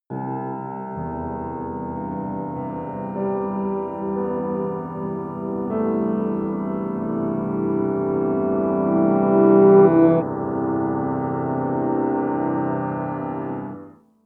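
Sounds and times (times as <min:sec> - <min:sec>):
laid-back piano sequence: 0:00.1 - 0:13.9.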